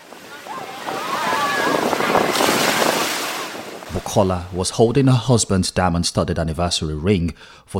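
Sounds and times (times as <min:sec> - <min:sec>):
faint voices of people talking and calling out: 0:00.0 - 0:02.4
ocean surf at a beach: 0:00.0 - 0:04.7
wind at a beach: 0:00.0 - 0:07.7
speech: 0:04.1 - 0:07.7.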